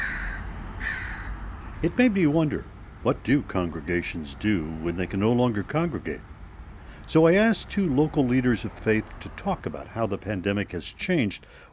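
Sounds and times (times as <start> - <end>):
crow cawing: 0.0 - 1.4
speech: 1.8 - 6.3, 7.1 - 11.7.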